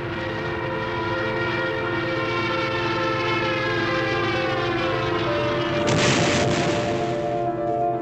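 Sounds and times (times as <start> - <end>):
Stuka dive-bomber attack siren wail: 0.0 - 8.0
rumbling blast: 5.8 - 7.6.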